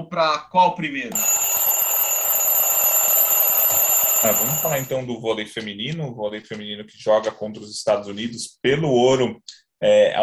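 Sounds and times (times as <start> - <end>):
speech: 0.0 - 1.5, 3.7 - 10.2
electronic alarm clock ringing: 1.1 - 4.9.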